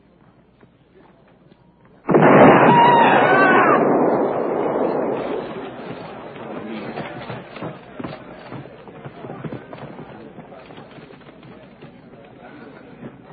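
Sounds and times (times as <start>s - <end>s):
landmine explosion rolling into a long rough rumble: 2.1s - 8.8s.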